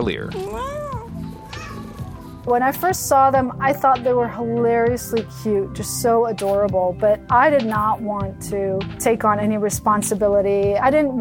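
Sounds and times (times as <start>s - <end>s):
speech: 0.0s - 0.8s, 2.4s - 11.1s
kitten meowing: 0.3s - 2.3s.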